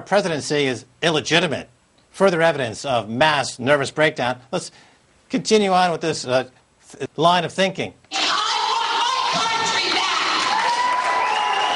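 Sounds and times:
speech: 0:00.0 - 0:08.0
dense crowd cheering at a town hall meeting: 0:08.1 - 0:11.7
overlapping shouts and whoops: 0:08.1 - 0:11.7.

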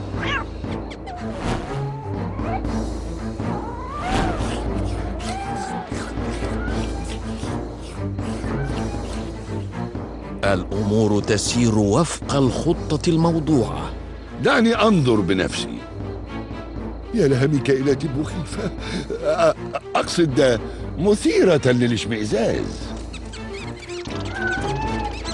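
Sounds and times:
hungry cat meowing and growling: 0:00.2 - 0:02.7, 0:03.7 - 0:07.4, 0:08.3 - 0:09.3, 0:24.1 - 0:25.3
speech: 0:10.5 - 0:15.9, 0:17.1 - 0:22.9.

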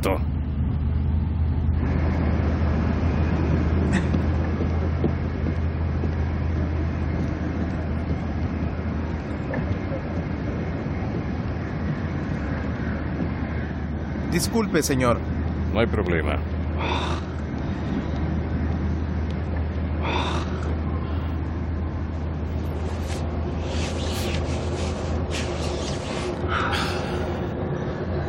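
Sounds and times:
speech: 0:00.0 - 0:00.3, 0:14.4 - 0:17.2
bus engine rumble heard from inside: 0:00.0 - 0:28.2
road noise heard from inside a bus: 0:00.0 - 0:28.2.

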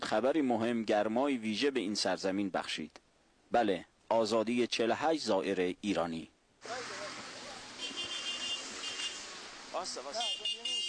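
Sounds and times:
speech: 0:00.1 - 0:06.9, 0:09.8 - 0:10.8
arriving vehicles with engine and road noise: 0:06.6 - 0:10.8
faint horn-like tones: 0:06.7 - 0:10.8.

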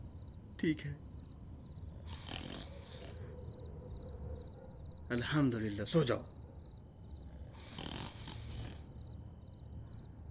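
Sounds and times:
speech: 0:00.6 - 0:01.1, 0:05.1 - 0:06.4
person snoring in sleep: 0:02.0 - 0:03.2, 0:07.3 - 0:09.0.

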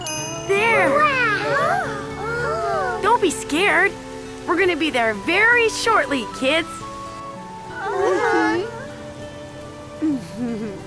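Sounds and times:
steady rain pattering on a hard surface: 0:00.0 - 0:10.8
wavering voice-like cry: 0:00.8 - 0:03.0, 0:07.7 - 0:08.9
speech: 0:03.2 - 0:06.8.

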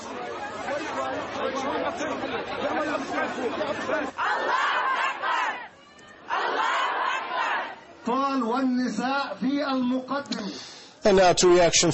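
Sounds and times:
large protest crowd chanting: 0:00.0 - 0:07.9
speech: 0:01.1 - 0:04.7, 0:08.3 - 0:11.9.

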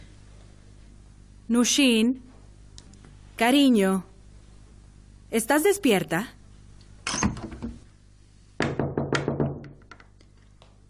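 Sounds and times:
speech: 0:01.5 - 0:02.3, 0:03.4 - 0:04.1, 0:05.3 - 0:06.4
knocking on a door: 0:08.6 - 0:09.8.

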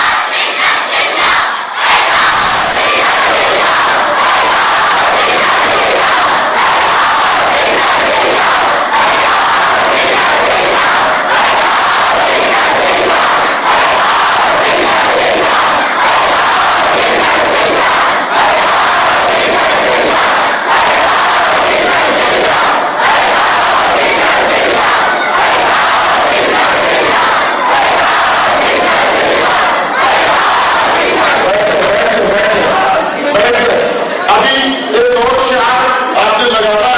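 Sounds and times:
large crowd of children and adults shouting a slogan at a religious gathering: 0:00.0 - 0:36.9.

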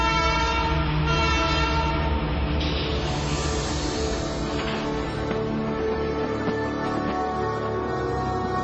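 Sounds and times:
steam train horn blaring: 0:00.0 - 0:02.5
train cars rolling on the rails: 0:00.0 - 0:08.6.

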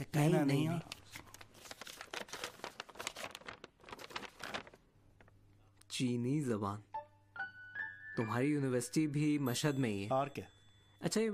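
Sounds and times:
speech: 0:00.0 - 0:01.0, 0:06.0 - 0:06.9, 0:08.2 - 0:11.3
paper being handled, rustling and crinkling: 0:00.8 - 0:05.4.

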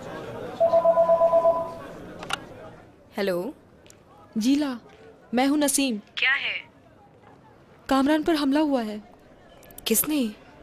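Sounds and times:
low murmur: 0:00.0 - 0:10.6
telephone with warbling pulsing electronic ring: 0:00.6 - 0:01.9
speech: 0:03.2 - 0:03.6, 0:04.4 - 0:06.7, 0:07.9 - 0:09.1, 0:09.9 - 0:10.4.

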